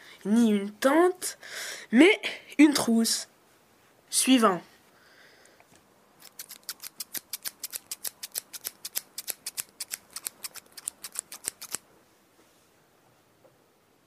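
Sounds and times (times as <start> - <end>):
speech: 0.2 - 3.3, 4.1 - 4.7
pair of scissors snipping with crisp metallic cuts: 6.2 - 11.8.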